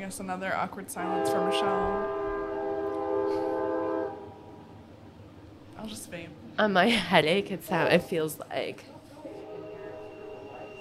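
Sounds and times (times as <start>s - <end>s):
speech: 0.0s - 2.3s, 5.8s - 9.0s
train passing: 0.0s - 10.7s
train horn blast: 1.0s - 4.4s, 9.3s - 10.7s.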